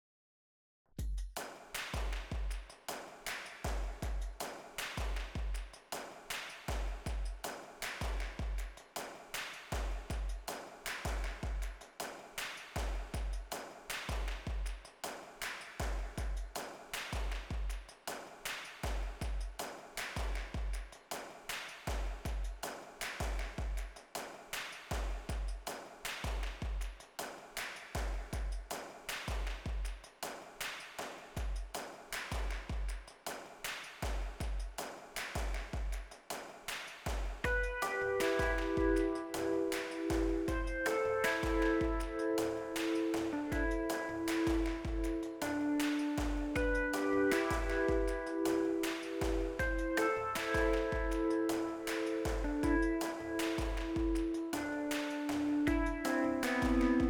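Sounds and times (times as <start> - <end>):
percussion: 1.0 - 57.0
Rhodes electric piano: 37.6 - 57.0.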